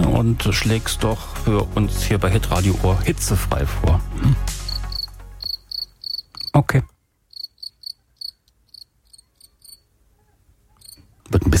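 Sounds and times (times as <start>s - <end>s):
speech: 0.2s - 4.6s, 6.6s - 6.9s, 11.3s - 11.5s
cricket chirping: 4.6s - 6.6s, 7.3s - 9.9s, 10.8s - 11.0s.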